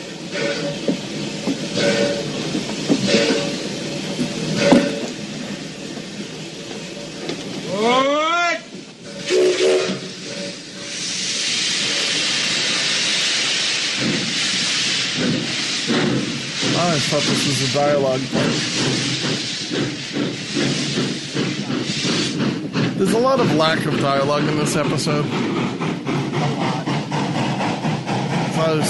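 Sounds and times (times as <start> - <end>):
steam train chugging while pulling out of a station: 0.0 - 28.8
steam train whistle: 9.1 - 10.1
speech: 17.2 - 18.7, 23.2 - 25.9, 28.6 - 28.8.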